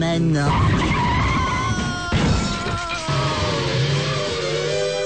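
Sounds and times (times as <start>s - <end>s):
speech: 0.0s - 0.9s
car tires screeching in a long braking skid: 0.5s - 2.0s
car crash: 0.5s - 4.2s
frantic scream-like voices: 0.5s - 4.9s.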